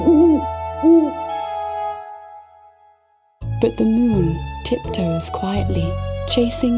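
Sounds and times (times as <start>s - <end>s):
owl hooting: 0.0s - 1.3s
speech: 3.6s - 6.7s.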